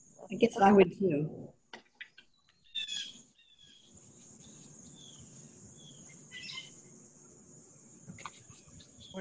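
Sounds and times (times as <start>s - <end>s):
speech: 0.3s - 1.6s
wild birds chirping and calling in the morning: 1.9s - 6.9s
high-pitched insect drone: 2.8s - 9.2s.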